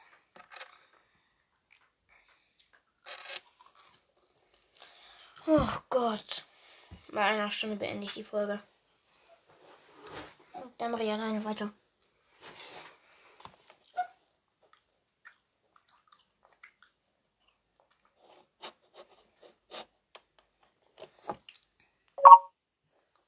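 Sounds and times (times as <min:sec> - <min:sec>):
speech: 0:05.5 - 0:06.5, 0:07.1 - 0:08.7, 0:10.8 - 0:11.8
mobile phone message notification chime: 0:22.2 - 0:22.5.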